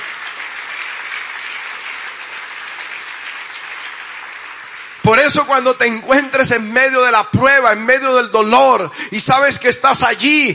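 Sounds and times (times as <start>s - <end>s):
audience applause: 0.0s - 5.9s
speech: 5.1s - 10.5s.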